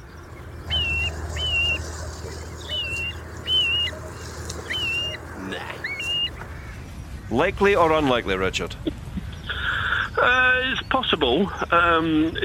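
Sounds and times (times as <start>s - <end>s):
grey plover giving plaintive slurred whistled calls: 0.0s - 7.4s
low steady rumble: 0.0s - 10.6s
speech: 7.3s - 9.0s, 10.3s - 12.4s.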